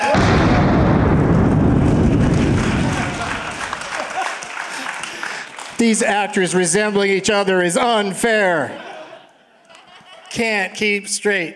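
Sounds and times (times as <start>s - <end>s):
loud cannon fire barrage of booms and rumble: 0.0s - 4.1s
laughter: 2.7s - 5.4s, 7.7s - 10.7s
speech: 5.8s - 8.9s, 10.3s - 11.5s.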